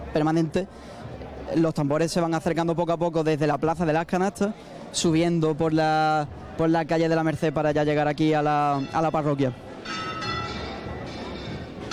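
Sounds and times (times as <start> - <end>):
faint murmur of noise: 0.0 - 11.9
speech: 0.1 - 10.1
church bells ringing: 8.6 - 11.9.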